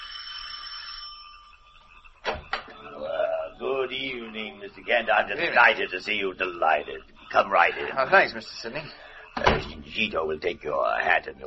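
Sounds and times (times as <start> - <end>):
doorbell ringing: 0.0 - 1.7
laughter: 1.2 - 11.3
speech: 3.9 - 9.0, 9.9 - 11.4.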